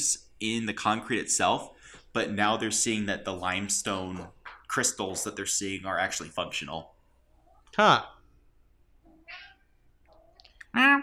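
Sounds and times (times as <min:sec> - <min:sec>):
speech: 0:00.0 - 0:07.0, 0:07.7 - 0:08.2, 0:10.8 - 0:11.0
cat meowing: 0:09.1 - 0:10.4.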